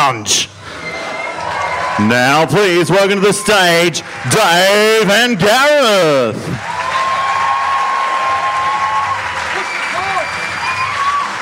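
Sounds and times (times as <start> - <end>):
speech: 0.1 - 0.6, 2.0 - 6.7
live audience at the Comics Lounge clapping and cheering: 1.0 - 11.4
high whistles from a live audience: 9.5 - 11.3.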